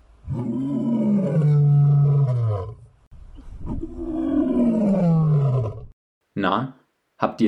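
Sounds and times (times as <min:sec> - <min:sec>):
lion roaring: 0:00.2 - 0:06.0
speech: 0:06.5 - 0:07.4.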